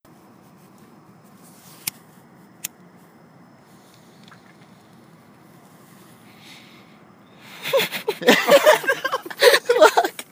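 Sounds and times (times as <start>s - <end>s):
lighter: 0.5s - 6.3s
laughter: 7.3s - 10.3s.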